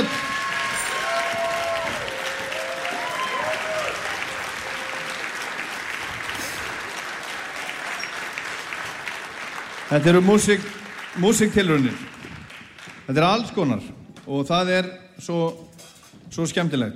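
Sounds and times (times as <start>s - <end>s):
audience applause for a big band at a music competition: 0.0s - 13.2s
speech: 9.9s - 12.1s, 13.1s - 15.7s, 16.3s - 16.9s.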